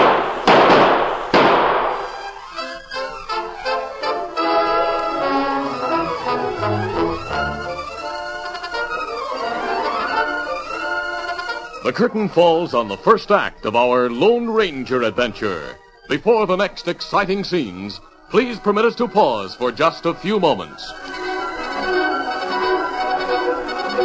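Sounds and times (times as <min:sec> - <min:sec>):
gunshots in an old radio western drama: 0:00.0 - 0:02.3
orchestral music: 0:01.2 - 0:24.0
speech: 0:11.9 - 0:21.2.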